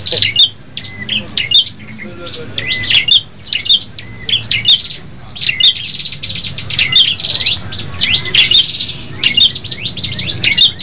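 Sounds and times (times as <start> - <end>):
low background hum: 0.0 - 10.8
red-headed tailorbirds singing together with sharp high chirps and whistles: 0.0 - 10.8.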